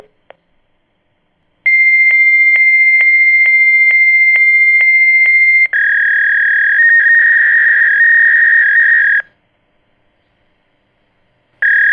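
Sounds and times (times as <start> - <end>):
fax machine: 1.7 - 9.3, 11.6 - 11.8.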